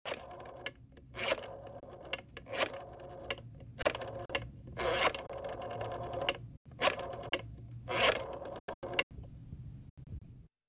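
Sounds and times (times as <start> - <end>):
old telephone dialing: 0.1 - 9.0.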